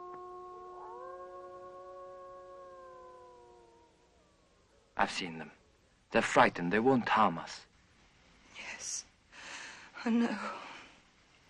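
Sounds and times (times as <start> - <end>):
wolf howling: 0.0 - 5.0
speech: 5.0 - 7.7, 10.0 - 10.7.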